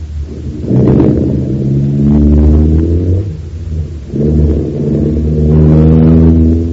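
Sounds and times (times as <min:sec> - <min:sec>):
car engine starting and revving as the car pulls away: 0:00.0 - 0:06.7.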